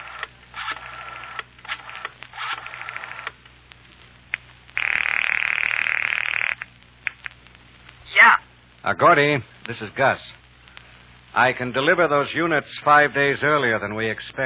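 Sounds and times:
telephone ring tone: 4.8s - 6.6s
speech: 8.9s - 10.4s, 11.4s - 14.4s.

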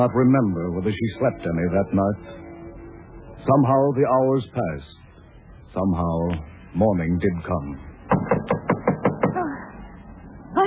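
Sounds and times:
speech: 0.0s - 2.5s, 3.4s - 5.0s, 5.7s - 7.9s
sharp loud knocks on a front door by a Coast Guard officer: 8.1s - 9.4s.

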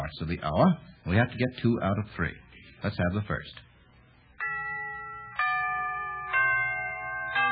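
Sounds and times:
speech: 0.1s - 3.7s
clock bells chiming the third quarter: 4.3s - 7.4s.

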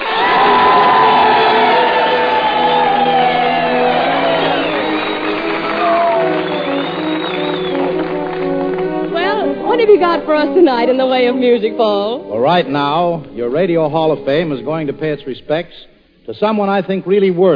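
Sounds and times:
audience whistling shrilly: 0.0s - 8.1s
audience cheering and whooping: 0.0s - 8.9s
audience applause: 0.0s - 10.6s
speech: 10.3s - 17.5s.

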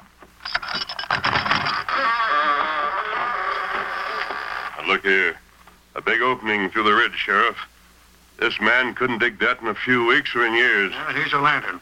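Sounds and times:
extra-large door in a back wall creaking open: 0.4s - 4.8s
speech: 4.9s - 5.4s, 6.0s - 7.7s, 8.4s - 11.7s.

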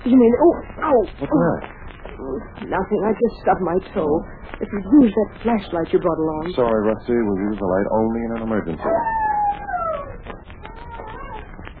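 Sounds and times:
speech: 0.0s - 9.2s
faint crackling background: 0.0s - 11.7s
dog howling: 7.9s - 11.6s.

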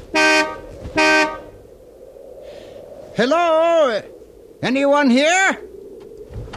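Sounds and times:
loud car horn honks: 0.1s - 1.6s
speech: 3.2s - 5.7s.

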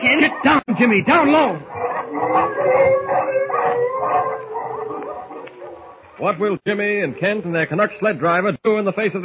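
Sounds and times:
speech: 0.0s - 3.0s, 6.2s - 9.2s
pack of wolves howling: 0.0s - 6.2s.

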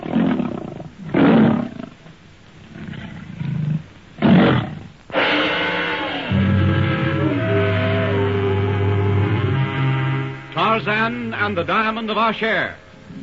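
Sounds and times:
saber-toothed tiger roaring in a lighted chamber: 0.0s - 1.9s, 2.7s - 9.6s
speech: 10.8s - 12.8s.

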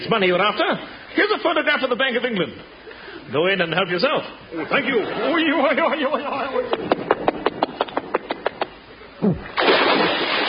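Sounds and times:
speech: 0.0s - 7.2s, 9.2s - 10.1s
man falling into the sea with a loud splash: 9.5s - 10.4s.

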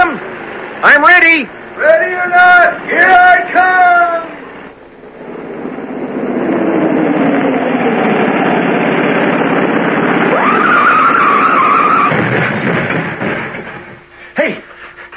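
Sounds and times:
speech: 0.8s - 4.4s
car engine roaring on a hill turn: 1.5s - 14.2s
car tires skidding through a turn on a hill: 5.1s - 14.1s.

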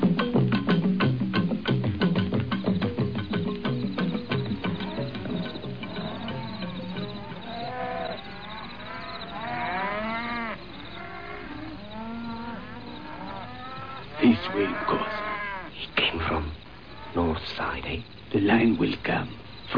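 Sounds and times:
crickets chirring: 0.0s - 19.7s
cattle lowing in long drawn-out moos: 4.3s - 15.8s, 16.8s - 17.3s
speech: 14.4s - 15.2s, 17.5s - 19.7s.

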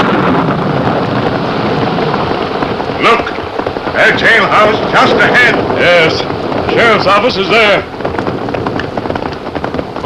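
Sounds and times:
late-afternoon thunderstorm rain: 0.0s - 10.0s
thunderstorm wind noise: 0.0s - 10.0s
speech: 4.1s - 7.9s.

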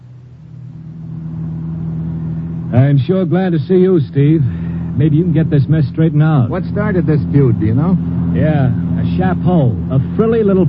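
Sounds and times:
car engine revving as car pulls away in Leopoldville: 0.0s - 10.6s
speech: 2.7s - 10.6s.

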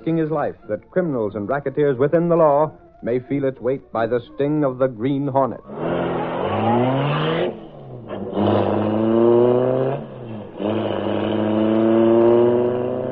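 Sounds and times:
speech: 0.0s - 6.1s
car engine revving as it races off: 5.6s - 13.0s.

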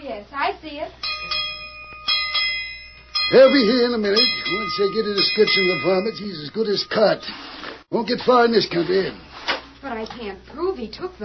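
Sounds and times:
speech: 0.1s - 1.5s, 3.3s - 11.2s
ranch bell clanging as its rope is pulled: 1.0s - 7.3s.

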